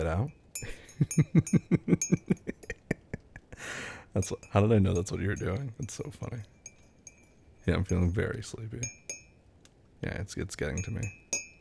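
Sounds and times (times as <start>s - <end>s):
speech: 0.0s - 2.6s, 3.6s - 6.6s, 7.7s - 9.1s, 10.0s - 11.2s
utensil clinking while stirring something in a container: 0.0s - 2.9s, 4.1s - 9.4s, 10.6s - 11.5s.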